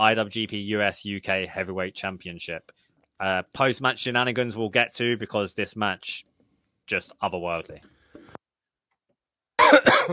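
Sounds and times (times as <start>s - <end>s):
speech: 0.0s - 6.3s, 6.9s - 7.9s, 9.7s - 10.1s
loud distorted cough into a microphone: 9.6s - 10.1s.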